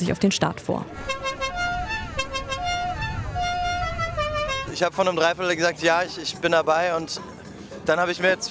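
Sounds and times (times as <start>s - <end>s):
speech: 0.0s - 1.4s, 4.8s - 8.4s
rally car engines rumbling at the Fischmarkt in Hamburg: 0.8s - 7.8s
rally car horns tooting at the Fischmarkt in Hamburg: 1.0s - 4.8s.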